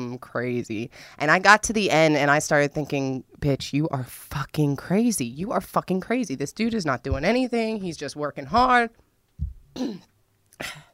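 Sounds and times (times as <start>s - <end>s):
speech: 0.2s - 9.0s, 9.8s - 10.8s
low throaty catch: 9.4s - 10.9s
person coughing harshly: 9.7s - 10.9s.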